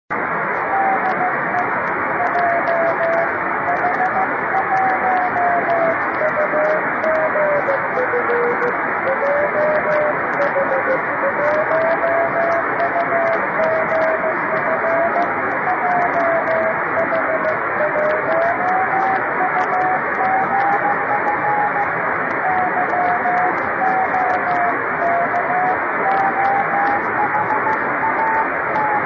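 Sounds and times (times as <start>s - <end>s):
24 GHz radio beacon signal on SSB in clear weather: 0.1s - 29.0s.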